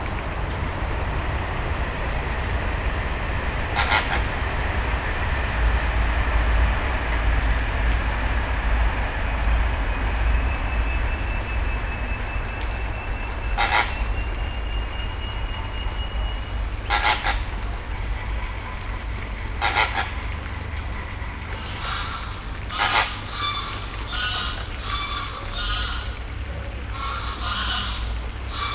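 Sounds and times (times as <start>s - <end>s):
passing train at a zoo: 0.0s - 28.7s
great white pelican at a zoo: 3.6s - 4.9s, 13.1s - 14.3s, 16.8s - 20.4s, 21.0s - 26.2s, 26.9s - 28.7s.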